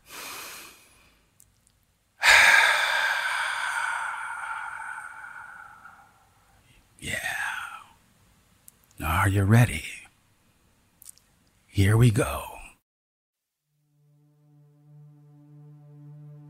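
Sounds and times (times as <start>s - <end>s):
slow deep breath: 0.0s - 1.3s, 2.2s - 8.0s
speech: 9.2s - 9.9s, 11.8s - 12.5s.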